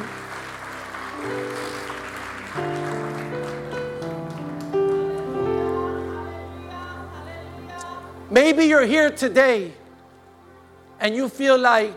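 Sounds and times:
crowd applauding with hand clapping: 0.0s - 6.2s
sustained keyboard or organ chords: 0.0s - 11.9s
speech: 8.4s - 9.8s, 11.0s - 11.9s.

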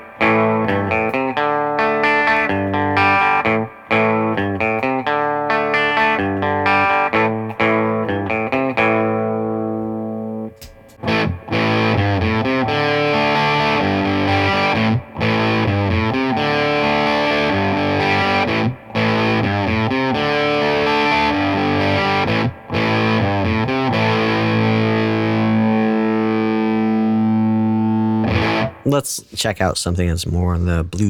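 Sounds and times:
fuzz electric guitar played through a tube amp: 0.0s - 28.9s
speech: 29.0s - 31.0s.

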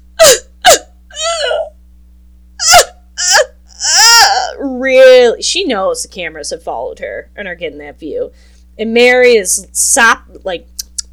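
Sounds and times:
woman sobbing with hiccuping gasps: 0.2s - 1.7s, 2.6s - 4.7s
speech: 4.8s - 10.8s.

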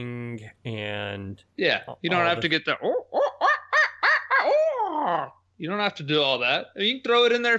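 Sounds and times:
speech: 0.0s - 3.3s, 5.0s - 7.5s
person imitating owl hoots: 0.0s - 5.4s.

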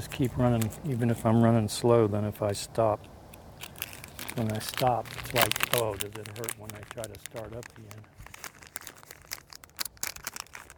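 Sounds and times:
strawberry banana caffeine energy gel wrapper crinkling: 0.0s - 1.3s, 3.5s - 10.7s
speech: 0.0s - 3.2s, 4.4s - 8.2s.

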